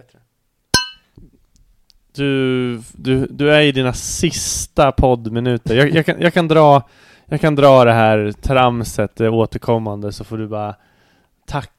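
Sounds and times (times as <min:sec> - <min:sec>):
speech: 0:00.0 - 0:00.4, 0:01.2 - 0:01.4, 0:02.2 - 0:10.9, 0:11.5 - 0:11.7
glasses clinking in a toast: 0:00.8 - 0:01.1.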